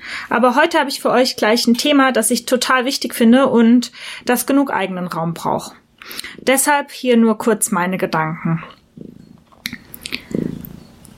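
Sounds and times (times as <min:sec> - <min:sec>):
speech: 0:00.3 - 0:09.2
cat purring softly: 0:08.9 - 0:09.5, 0:10.1 - 0:11.0.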